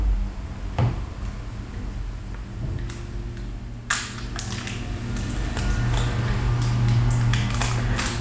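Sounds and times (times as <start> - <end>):
low rumble of traffic: 0.0 - 8.2
crinkly plastic wrapping removed from power cable: 3.9 - 8.2.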